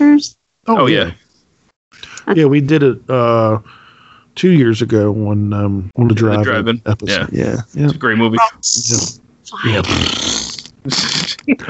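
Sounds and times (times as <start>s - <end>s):
speech: 0.2s - 1.2s, 1.9s - 3.8s, 4.4s - 11.6s
raspberry blown with the lips as a fart imitation: 9.8s - 11.4s.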